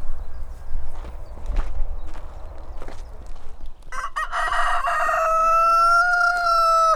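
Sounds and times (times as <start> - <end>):
rooster crowing: 3.9 - 6.9.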